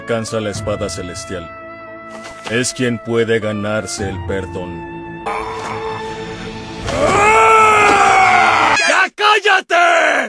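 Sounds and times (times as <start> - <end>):
speech: 0.1 - 5.5, 9.4 - 10.2
woman screaming: 6.9 - 9.0.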